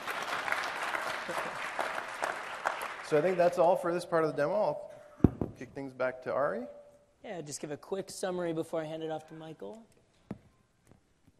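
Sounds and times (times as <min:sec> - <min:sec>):
audience applause after a software demo: 0:00.0 - 0:04.0
speech: 0:01.3 - 0:01.5, 0:03.1 - 0:04.9, 0:05.6 - 0:10.0.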